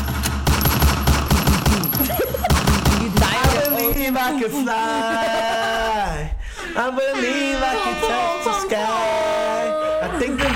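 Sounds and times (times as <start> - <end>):
gunshot sound effect rapid volley: 0.0 - 3.8
laughter: 1.8 - 10.5
speech: 4.3 - 5.5, 6.8 - 9.6.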